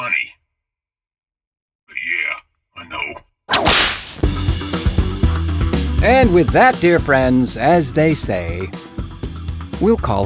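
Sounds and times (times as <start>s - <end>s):
loud whip crack with swishing sweep: 3.5s - 4.3s
music with steady percussive hits: 4.2s - 10.2s
speech: 6.0s - 8.9s, 9.8s - 10.2s.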